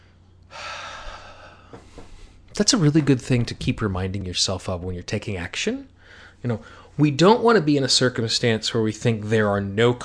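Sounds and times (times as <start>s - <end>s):
deep inhalation: 0.5s - 2.4s
speech: 2.6s - 10.0s.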